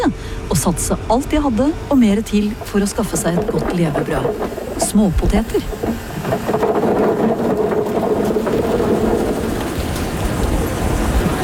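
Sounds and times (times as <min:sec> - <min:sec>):
speech: 0:00.0 - 0:06.7
tractor engine droning in a potato field: 0:00.0 - 0:11.4
clattering of soil clumps, stones and seed potatoes being sorted: 0:01.9 - 0:10.6.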